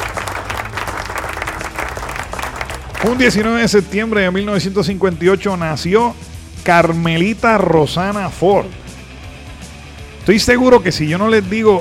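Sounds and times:
crowd applauding: 0:00.0 - 0:03.6
speech: 0:03.0 - 0:08.8, 0:10.3 - 0:11.7.

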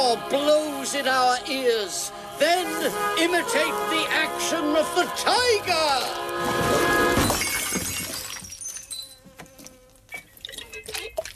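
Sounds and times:
speech: 0:00.0 - 0:06.8
blowfly buzzing in a film scene: 0:00.0 - 0:07.4, 0:08.9 - 0:10.3
glass pickle jar smashed and breaking: 0:07.2 - 0:09.2.

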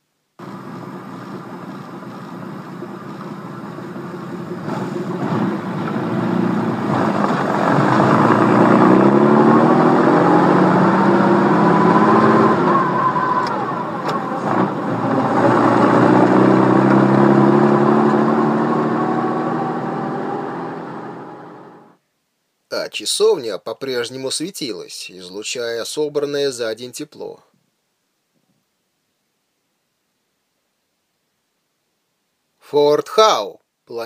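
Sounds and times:
car engine roaring as the car pulls away at night outside a church: 0:00.4 - 0:22.0
speech: 0:23.0 - 0:27.5, 0:32.7 - 0:34.0.

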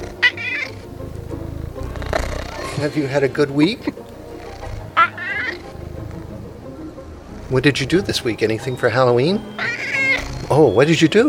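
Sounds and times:
cat meowing: 0:00.0 - 0:00.9, 0:04.4 - 0:05.8, 0:07.3 - 0:11.2
soft rhythmic low murmuring from cat: 0:00.0 - 0:02.8, 0:03.7 - 0:06.4, 0:07.2 - 0:08.8, 0:09.4 - 0:10.8
speech: 0:02.8 - 0:04.0, 0:07.5 - 0:09.8, 0:10.5 - 0:11.2.

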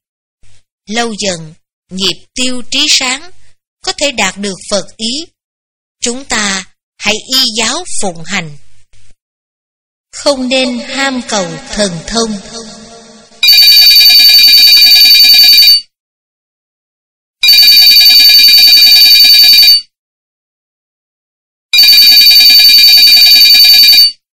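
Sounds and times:
speech: 0:00.9 - 0:05.4, 0:06.0 - 0:08.6, 0:10.1 - 0:12.7
telephone ringing in bright electronic bursts: 0:13.4 - 0:15.9, 0:17.4 - 0:19.9, 0:21.8 - 0:24.2.

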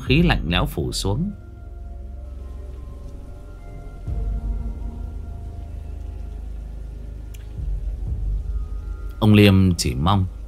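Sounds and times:
speech: 0:00.1 - 0:01.4, 0:09.2 - 0:10.4
rain pattering on a surface: 0:02.3 - 0:10.4.

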